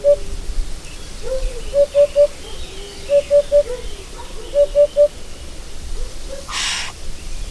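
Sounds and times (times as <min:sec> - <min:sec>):
Eurasian hoopoe calling in hollow triplets with softer sliding lower calls: 0:00.0 - 0:00.5, 0:01.2 - 0:05.2, 0:06.0 - 0:07.0.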